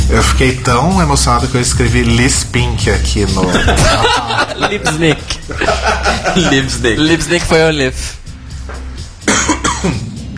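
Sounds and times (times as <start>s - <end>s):
speech: 0.2s - 8.2s, 9.8s - 10.1s
laughter: 3.3s - 7.2s
person coughing: 9.2s - 10.2s.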